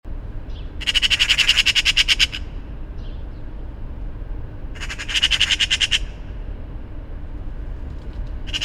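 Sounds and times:
low rumble like traffic: 0:00.0 - 0:08.6
Eurasian magpie Pica pica harsh rattling chatters: 0:00.2 - 0:02.4, 0:03.8 - 0:06.1, 0:07.4 - 0:08.6.

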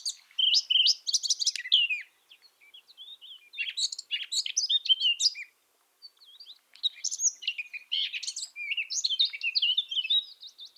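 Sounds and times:
Eurasian blackcap Sylvia atricapilla singing: 0:00.0 - 0:05.5, 0:06.1 - 0:10.7.

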